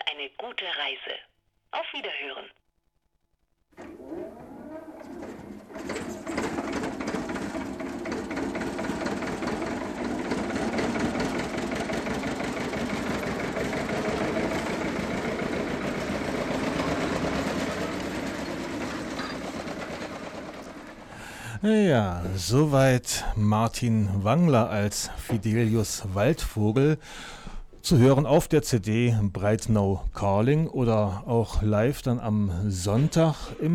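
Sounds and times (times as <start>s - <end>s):
speech: 0.2s - 2.6s, 21.6s - 33.7s
Bulldog tractor engine chugging: 5.7s - 21.4s.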